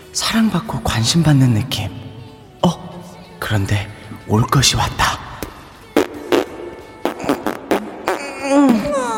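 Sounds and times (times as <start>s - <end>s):
speech: 0.2s - 2.0s, 3.5s - 5.2s
long loud wavering fart: 6.0s - 9.0s.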